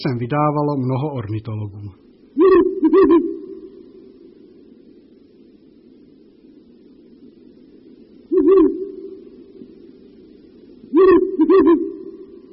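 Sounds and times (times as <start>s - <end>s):
speech: 0.0s - 3.4s
steady low hum: 0.0s - 12.5s
Ural owl hooting: 2.3s - 4.8s, 8.2s - 9.8s, 10.8s - 12.5s.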